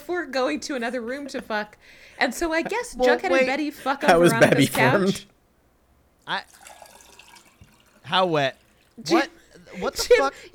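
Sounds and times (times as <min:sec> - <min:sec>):
speech: 0:00.1 - 0:05.3, 0:06.3 - 0:06.6, 0:08.1 - 0:10.5
laughter: 0:02.2 - 0:05.2
water being poured into a glass: 0:06.3 - 0:09.8.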